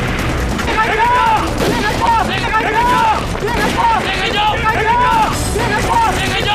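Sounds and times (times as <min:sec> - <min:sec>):
gunfire during a wartime raid: 0:00.0 - 0:05.0
men shouting: 0:00.7 - 0:06.5
voices: 0:00.7 - 0:06.5.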